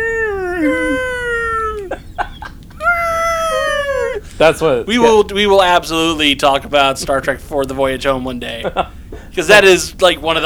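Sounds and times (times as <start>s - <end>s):
whale song with long eerie moaning calls: 0.0s - 5.0s
laughter: 0.0s - 10.4s
speech: 4.4s - 10.4s.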